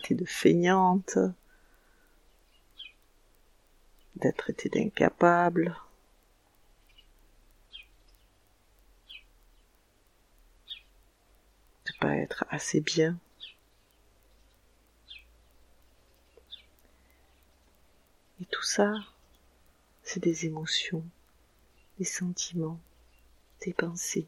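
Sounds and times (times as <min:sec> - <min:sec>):
speech: 0:00.1 - 0:01.4, 0:04.2 - 0:05.8, 0:12.0 - 0:13.2, 0:18.4 - 0:19.1, 0:20.1 - 0:21.2, 0:22.0 - 0:22.9, 0:23.6 - 0:24.2
birds chirping outdoors: 0:01.0 - 0:03.1, 0:06.7 - 0:09.8, 0:10.6 - 0:11.0, 0:11.9 - 0:24.2.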